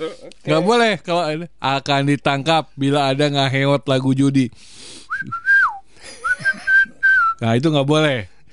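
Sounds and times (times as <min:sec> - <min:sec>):
speech: 0:00.0 - 0:05.4, 0:07.4 - 0:08.3
person whistling a short melodic tune: 0:05.1 - 0:07.4
laughter: 0:06.0 - 0:06.9.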